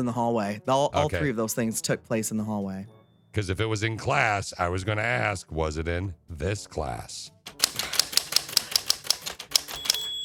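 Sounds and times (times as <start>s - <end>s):
speech: 0.0s - 7.7s
steady brisk typewriter keystrokes: 7.5s - 10.2s.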